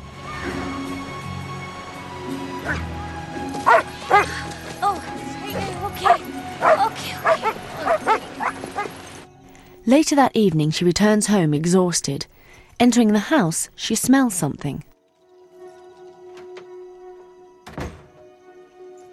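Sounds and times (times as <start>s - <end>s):
dogs barking and yipping on leads on a beach: 2.6s - 9.2s
speech: 2.7s - 2.9s, 9.9s - 14.9s
dogs whimpering on leads on a beach: 3.7s - 9.0s.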